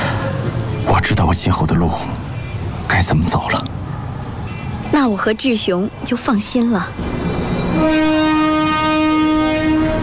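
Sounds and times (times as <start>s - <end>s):
rumble of rail cars as train gets under way: 0.0s - 10.0s
speech: 1.3s - 2.3s, 2.9s - 3.8s, 4.9s - 7.1s
train horn long steady blast: 7.6s - 10.0s.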